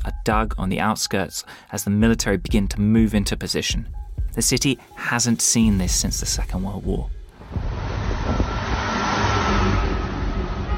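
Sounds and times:
speech: 0.2s - 7.6s
convoy of tanks and trucks driving past: 7.4s - 10.7s.

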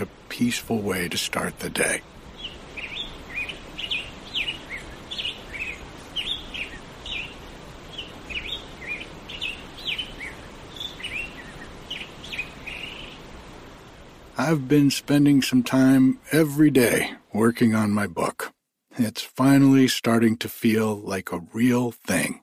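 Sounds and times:
speech: 0.0s - 2.2s, 14.4s - 18.4s, 19.0s - 22.4s
grosbeak song at daybreak: 0.0s - 16.0s
rushing creek water: 0.0s - 17.2s.

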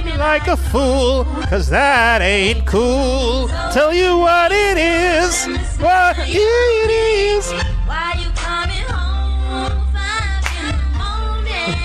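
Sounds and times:
soulful music track with sustained vocal-like tones: 0.0s - 11.8s
speech: 0.2s - 8.2s
rhythmic soul-clap hand claps: 10.4s - 10.8s.

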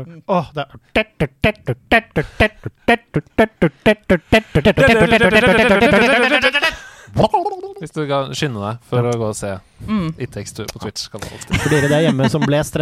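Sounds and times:
speech: 0.0s - 6.5s, 8.0s - 12.7s
voice imitating video game drowning countdown music: 1.0s - 6.8s
laughter: 3.8s - 7.7s, 11.5s - 12.7s.

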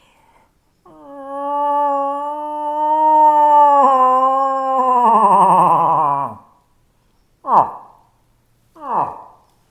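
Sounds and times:
person imitating a cow moose rutting call: 0.9s - 6.6s, 7.4s - 8.0s, 8.8s - 9.4s.

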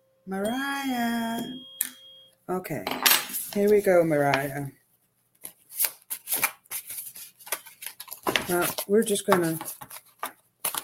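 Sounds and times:
speech: 0.2s - 1.7s, 2.5s - 4.8s, 8.5s - 9.8s
cards being handled and shuffled: 5.4s - 10.8s.

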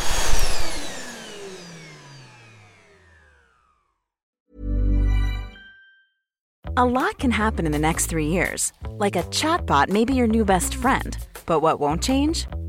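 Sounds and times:
vacuum cleaner motor whining down in falling pitch: 0.0s - 4.1s
speech: 6.8s - 12.6s.

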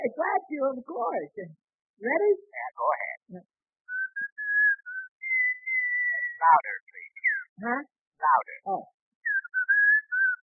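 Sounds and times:
speech: 0.3s - 3.6s, 6.4s - 6.8s, 7.6s - 9.0s
man whistling into a telephone: 3.9s - 6.2s, 9.3s - 10.4s.

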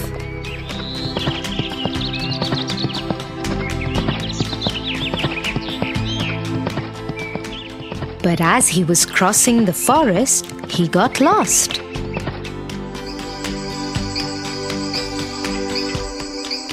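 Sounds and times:
bright music with twittering bird-like high notes: 0.0s - 16.7s
horse hooves clip-clopping: 0.6s - 12.5s
speech: 8.4s - 11.8s.

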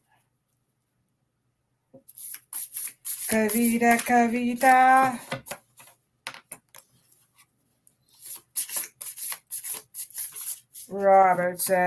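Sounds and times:
reading cards drawn from a deck: 2.1s - 6.0s, 8.1s - 11.8s
speech: 3.3s - 5.4s, 11.0s - 11.8s.

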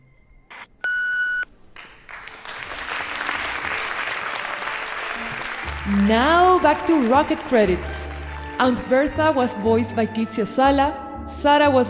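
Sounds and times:
answering machine beep: 0.0s - 1.4s
loud sustained applause-like clapping: 1.8s - 9.7s
speech: 5.9s - 11.8s.

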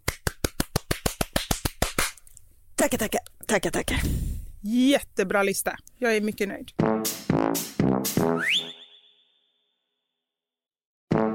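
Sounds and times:
single person clapping: 0.0s - 2.2s
speech: 2.8s - 8.8s.

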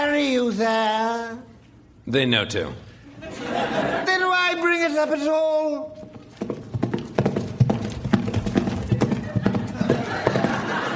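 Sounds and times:
speech: 0.4s - 1.5s, 2.1s - 4.0s, 4.9s - 6.0s
laughter: 3.1s - 4.4s, 9.0s - 10.9s
horse hooves clip-clopping: 6.0s - 10.9s.

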